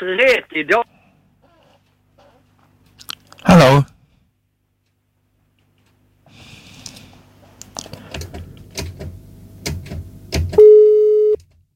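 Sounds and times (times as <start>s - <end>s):
speech: 0.0s - 0.9s
telephone line tone: 10.6s - 11.4s.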